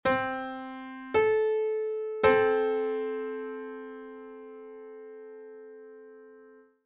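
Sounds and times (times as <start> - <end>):
piano in 15edo tuning: 0.0 - 6.8.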